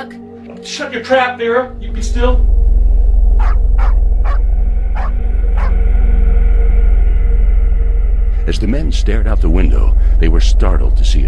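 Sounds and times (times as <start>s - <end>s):
speech: 0.0s - 2.6s, 8.5s - 11.2s
steady low rumbling hum: 1.4s - 11.2s
dogs barking: 3.4s - 5.8s.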